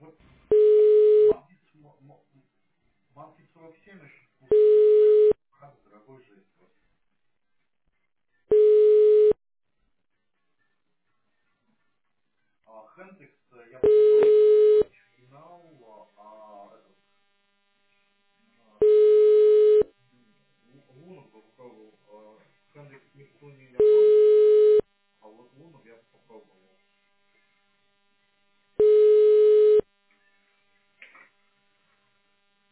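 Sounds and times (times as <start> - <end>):
telephone ringback tone during call transfer: 0.5 - 1.4, 4.5 - 5.4, 8.5 - 9.4, 13.8 - 14.8, 18.8 - 19.9, 23.8 - 24.8, 28.8 - 29.8.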